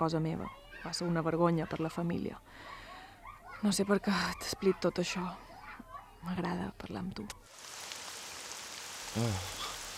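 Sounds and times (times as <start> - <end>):
speech: 0.0 - 2.8, 3.6 - 5.5, 6.2 - 7.7, 9.2 - 9.7
rain falling: 7.5 - 9.9.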